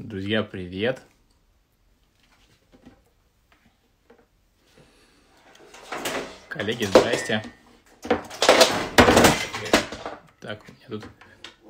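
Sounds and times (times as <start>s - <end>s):
speech: 0.0s - 1.1s, 6.6s - 8.2s, 10.4s - 11.2s
phone charger falling and clattering against a hard surface: 5.6s - 10.3s.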